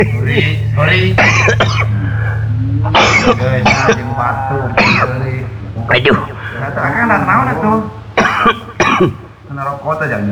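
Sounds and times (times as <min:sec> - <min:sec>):
speech: 0:00.0 - 0:02.2, 0:02.8 - 0:10.2
laughter: 0:00.0 - 0:10.2
person coughing: 0:01.2 - 0:05.2, 0:06.0 - 0:09.3
person groaning: 0:02.9 - 0:08.6.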